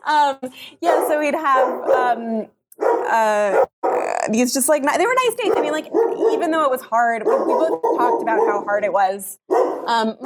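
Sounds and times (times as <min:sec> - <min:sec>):
speech: 0:00.0 - 0:10.2
drawn-out howling dog bark with strong harmonics: 0:00.8 - 0:02.2, 0:02.8 - 0:04.1, 0:05.4 - 0:08.9, 0:09.5 - 0:10.2
pet dogs barking and yelping: 0:00.8 - 0:02.2, 0:02.8 - 0:04.3, 0:05.2 - 0:10.2.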